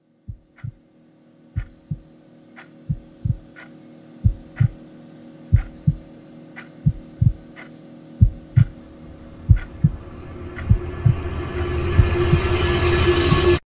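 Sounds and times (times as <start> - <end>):
clock ticking: 0.3 - 0.8, 1.6 - 2.0, 2.6 - 3.7, 4.3 - 4.8, 5.6 - 6.0, 6.6 - 8.8, 9.4 - 12.3
heartbeat: 0.3 - 0.8, 1.6 - 2.1, 2.8 - 4.8, 5.5 - 6.1, 6.7 - 12.6, 13.2 - 13.6.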